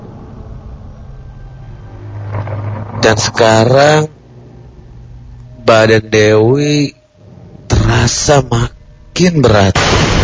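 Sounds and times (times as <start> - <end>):
road traffic rumbling along a street at the end of an alley: 0.0 - 9.2
speech: 3.1 - 4.2, 5.7 - 7.0, 7.9 - 10.1.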